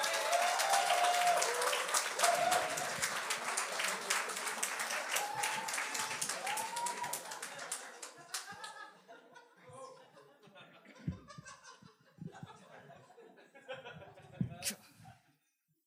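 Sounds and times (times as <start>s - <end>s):
voices whooping and cheering: 0.0s - 3.2s, 4.9s - 7.6s
sustained applause from a sizable audience: 0.0s - 8.9s
laughter: 2.3s - 15.3s.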